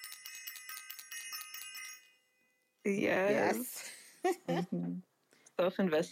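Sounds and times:
small bell rung rapidly: 0.0s - 3.6s
speech: 2.8s - 6.1s.

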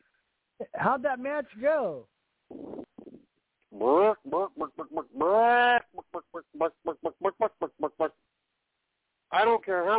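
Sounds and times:
speech: 0.8s - 2.6s, 3.8s - 8.2s, 9.3s - 9.9s
person imitating chicken clucking and squawking: 2.5s - 8.2s.

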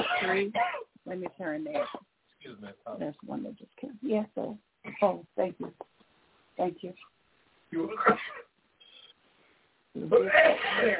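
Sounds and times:
loud harsh coughing: 0.0s - 0.9s, 1.7s - 2.0s, 7.8s - 8.5s, 10.2s - 10.9s
speech: 0.2s - 5.9s, 6.6s - 7.1s, 7.7s - 8.5s, 10.0s - 10.9s.

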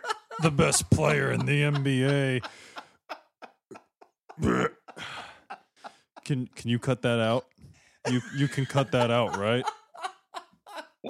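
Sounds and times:
laughter: 0.0s - 7.4s, 8.1s - 11.0s
speech: 0.4s - 2.7s, 4.4s - 4.8s, 6.3s - 9.8s
man belching while drinking a 48-ounce soda: 4.4s - 5.0s.

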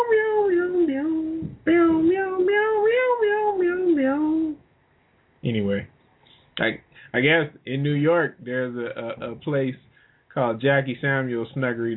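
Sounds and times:
person imitating cat meows: 0.0s - 4.6s
speech: 6.7s - 11.9s.

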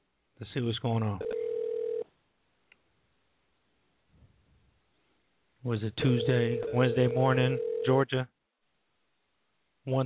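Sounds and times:
speech: 0.4s - 1.4s, 5.6s - 8.3s, 9.8s - 10.0s
ringback tone from an outgoing phone call: 1.2s - 2.0s, 6.1s - 7.9s.

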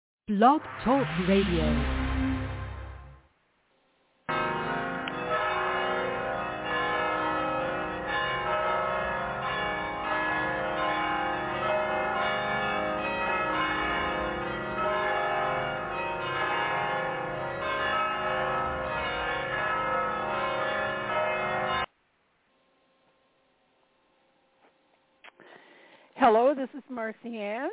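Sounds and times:
speech: 0.3s - 2.0s, 26.7s - 27.7s
mission bells ringing: 4.3s - 21.9s.

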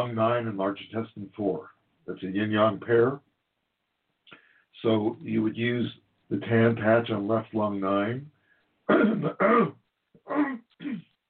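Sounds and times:
speech: 0.0s - 3.3s, 4.3s - 8.3s, 8.9s - 11.1s
person clearing throat: 8.9s - 11.2s.

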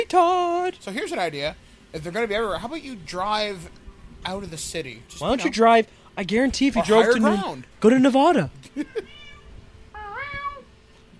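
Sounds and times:
speech: 0.1s - 9.2s
domestic cat meowing: 8.9s - 10.7s.

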